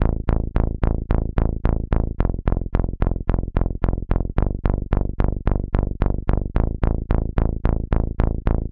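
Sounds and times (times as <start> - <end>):
80s synthwave bass line: 0.0 - 8.7.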